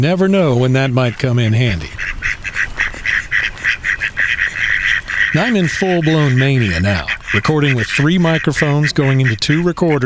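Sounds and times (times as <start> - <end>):
speech: 0.0 - 2.1, 5.3 - 10.0
ducks quacking: 0.1 - 10.0.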